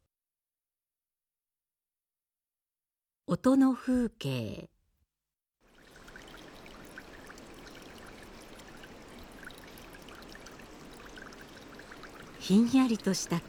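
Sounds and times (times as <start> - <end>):
speech: 3.3 - 4.7, 12.5 - 13.4
water seeping from a wall and flowing: 5.7 - 13.4.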